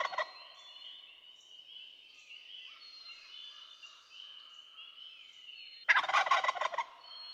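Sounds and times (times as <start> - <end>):
wild turkey gobble: 0.0 - 0.4, 5.9 - 7.0
songbird chatter and warbling: 0.0 - 7.3.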